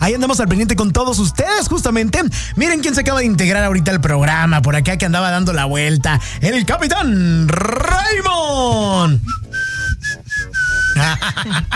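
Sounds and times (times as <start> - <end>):
speech: 0.1 - 9.4, 11.0 - 11.7
voice-like noise: 3.1 - 9.4
person whistling a sustained note in the style of a driver: 9.0 - 11.3
laughter: 10.8 - 11.7.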